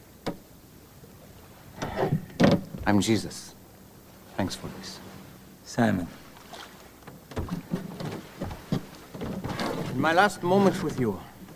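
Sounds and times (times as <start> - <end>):
faint breezy hiss: 0.0 - 11.5
water lapping against a small boat: 0.0 - 11.5
knocks and creaks against a small boat hull: 1.3 - 3.2, 6.2 - 11.5
speech: 2.9 - 3.6, 4.4 - 5.1, 5.7 - 6.2, 10.0 - 11.3.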